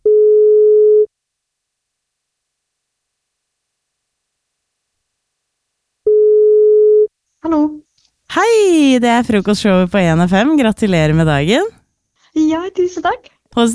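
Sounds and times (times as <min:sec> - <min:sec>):
telephone ringback tone from an outgoing call: 0:00.0 - 0:01.1, 0:06.1 - 0:07.1
speech: 0:08.4 - 0:11.8, 0:12.4 - 0:13.7.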